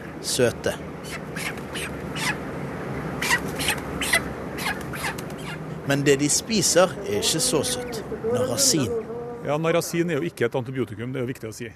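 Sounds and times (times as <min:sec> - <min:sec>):
about 15,000 chickens chirping and clucking in a poultry hall on a farm: 0:00.0 - 0:05.8
speech: 0:00.2 - 0:02.4, 0:05.9 - 0:11.7.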